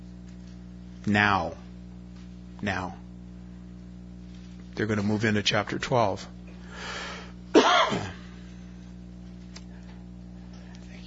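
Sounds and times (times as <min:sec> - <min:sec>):
low steady hum: 0:00.0 - 0:11.0
speech: 0:01.0 - 0:01.7, 0:02.6 - 0:03.0, 0:04.8 - 0:07.0
harsh cough with raspy throat-clearing: 0:07.5 - 0:08.4.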